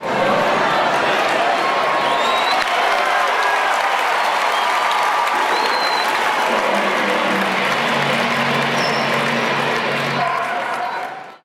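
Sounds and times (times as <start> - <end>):
baseball crowd cheering: 0.0 - 11.4.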